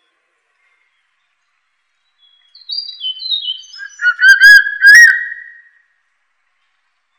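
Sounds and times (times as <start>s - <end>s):
crested serpent eagle whistling call: 2.6s - 5.8s.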